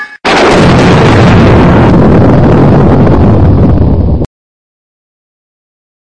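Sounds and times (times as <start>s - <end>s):
nuclear explosion: 0.2s - 4.3s.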